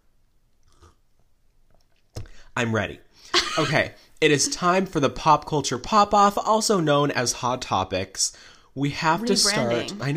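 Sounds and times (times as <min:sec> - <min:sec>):
person sipping tea: 0:00.5 - 0:02.1
swallowing mouth sound: 0:00.6 - 0:02.3
speech: 0:02.6 - 0:10.1.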